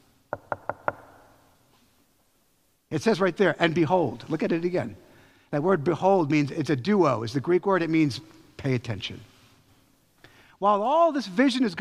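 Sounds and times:
knocking on a wooden door: 0.3 - 1.2
speech: 2.9 - 9.3, 10.6 - 11.7.

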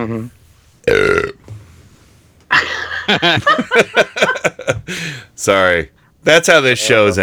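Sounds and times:
speech: 0.0 - 1.1, 3.1 - 7.2
loud drawn-out belch: 0.9 - 1.4
people laughing: 2.5 - 5.0.

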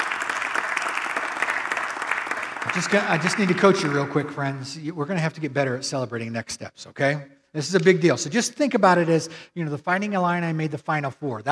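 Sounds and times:
large group clapping: 0.0 - 4.7
speech: 2.6 - 11.5.

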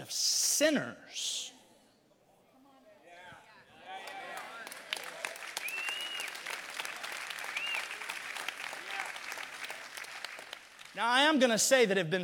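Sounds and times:
speech: 0.1 - 1.4, 11.0 - 12.2
audience applause: 4.0 - 11.0
crowd whistles: 5.6 - 6.6, 7.4 - 8.1.

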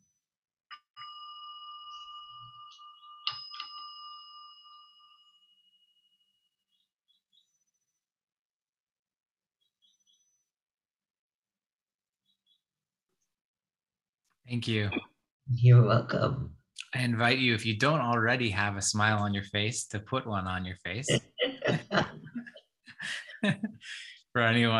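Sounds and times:
meditation bell struck: 0.7 - 6.4
speech: 14.5 - 22.1, 23.4 - 24.7
laughter: 21.0 - 23.8.

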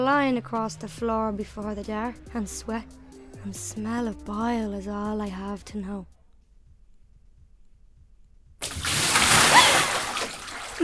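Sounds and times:
speech: 0.0 - 6.2
head plunging into a bucket of ice water: 8.6 - 10.8.

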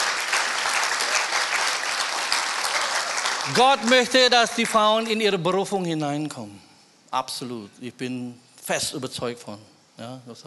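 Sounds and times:
audience applause at a church gathering: 0.0 - 5.2
speech: 3.5 - 10.4.

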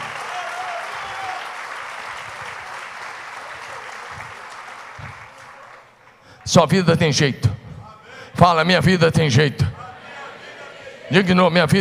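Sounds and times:
large crowd applauding in a reverberant room: 0.0 - 6.8
speech: 6.4 - 7.6, 8.4 - 9.7, 11.1 - 11.7.

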